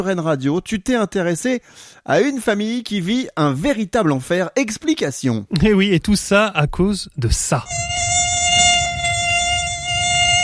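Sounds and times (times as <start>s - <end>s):
speech: 0.0s - 8.0s
high-pitched mosquito whine: 7.7s - 10.4s.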